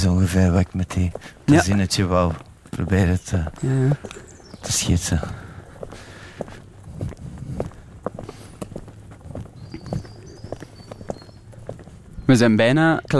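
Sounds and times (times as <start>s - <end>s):
speech: 0.0s - 6.6s, 12.3s - 13.1s
footsteps walking on hard ground under a small gateway: 0.0s - 13.1s.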